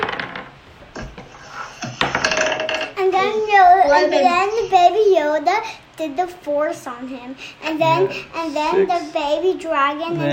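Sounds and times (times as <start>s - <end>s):
dice rolled for initiative clattering across a table in a tabletop game: 0.0s - 0.5s, 1.9s - 3.0s
speech: 3.5s - 10.3s.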